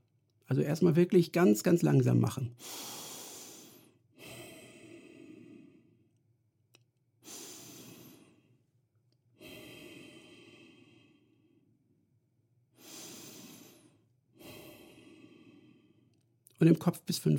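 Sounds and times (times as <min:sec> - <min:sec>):
speech: 0:00.5 - 0:03.0, 0:16.6 - 0:17.3
slow deep breaths: 0:02.6 - 0:06.3, 0:07.2 - 0:16.4.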